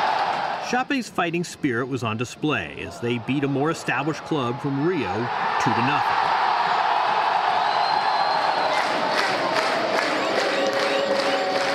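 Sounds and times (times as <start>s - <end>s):
huge stadium crowd chanting and cheering at a football match in Brazil: 0.0s - 0.9s, 2.6s - 11.7s
speech: 0.7s - 6.4s
sharp whistles: 7.6s - 8.9s.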